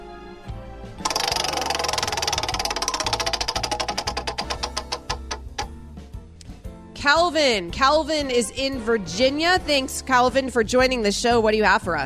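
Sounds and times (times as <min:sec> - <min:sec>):
prize wheel ticking as it spins and slows: 0:01.1 - 0:05.7
speech: 0:07.0 - 0:12.0.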